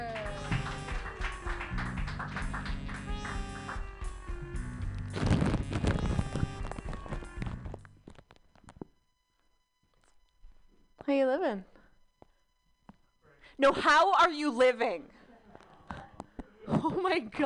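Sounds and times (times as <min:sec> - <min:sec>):
audience applause at a comedy show: 0:00.0 - 0:03.8
upbeat walk-on music at a comedy show: 0:00.0 - 0:08.0
speech: 0:11.1 - 0:11.7, 0:13.6 - 0:15.2, 0:16.8 - 0:17.4.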